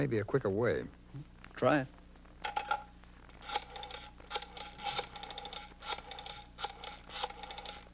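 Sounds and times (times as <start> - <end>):
speech: 0.0 - 2.6
telephone being dialed: 3.4 - 7.8.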